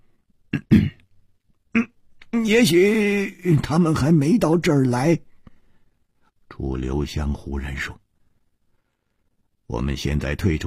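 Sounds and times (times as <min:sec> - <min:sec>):
voice imitating a character coughing: 0:00.6 - 0:01.0
speech: 0:02.4 - 0:05.3, 0:06.6 - 0:08.0, 0:09.7 - 0:10.6.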